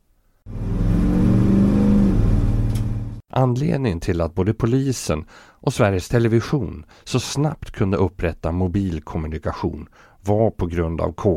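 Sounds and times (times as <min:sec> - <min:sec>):
3.7-litre 140-horsepower straight-six bus engine starting and revving: 0:00.5 - 0:03.2
speech: 0:03.4 - 0:11.3.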